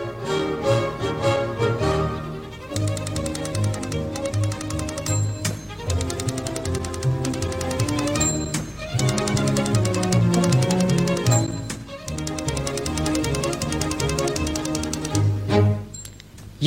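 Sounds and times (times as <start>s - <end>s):
bouncy instrumental radio jingle: 0.0s - 16.2s
typewriter key clacks: 2.7s - 15.2s.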